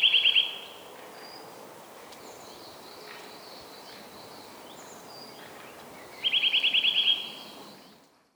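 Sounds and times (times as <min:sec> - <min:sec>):
Eurasian nuthatch Sitta europaea trilling sharp high notes: 0:00.0 - 0:07.8
faint other bird notes: 0:00.0 - 0:08.0
steady background noise: 0:00.0 - 0:08.0.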